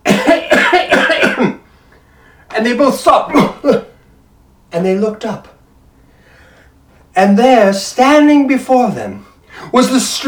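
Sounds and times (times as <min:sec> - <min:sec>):
person coughing: 0:00.0 - 0:01.7, 0:03.3 - 0:04.0
speech: 0:02.6 - 0:03.8, 0:04.8 - 0:05.5, 0:07.2 - 0:10.2.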